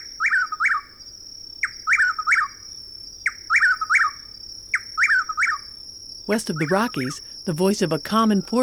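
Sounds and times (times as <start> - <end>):
chuck-will's-widow giving loud whistled calls in a southeastern woodland: 0.0 - 1.0, 1.6 - 8.6
faint steady high tone: 6.3 - 8.6
speech: 6.3 - 8.6.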